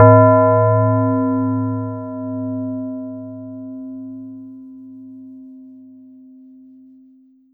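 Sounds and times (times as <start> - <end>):
Yamaha TX81Z synthesized tubular bells note C4: 0.0 - 4.6.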